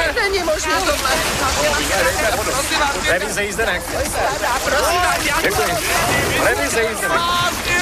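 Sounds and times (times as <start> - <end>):
water splashing around a sinking boat: 0.0 - 7.8
crowd of passengers clamoring and shouting on a boat: 4.0 - 7.8.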